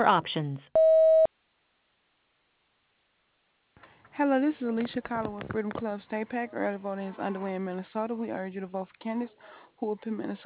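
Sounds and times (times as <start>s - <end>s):
speech: 0.0s - 0.8s, 4.2s - 10.4s
voicemail tone before recording a message: 0.8s - 1.3s.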